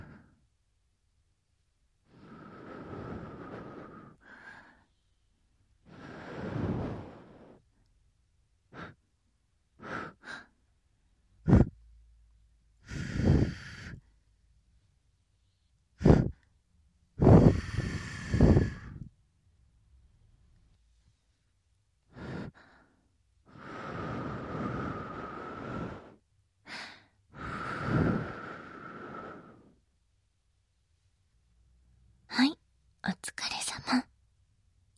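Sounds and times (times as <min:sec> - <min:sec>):
breathy puffs of air blown at the microphone: 0:02.1 - 0:04.9, 0:05.9 - 0:07.6, 0:12.8 - 0:14.1, 0:16.0 - 0:16.4, 0:17.2 - 0:19.1, 0:23.5 - 0:29.8
speech: 0:33.2 - 0:34.1.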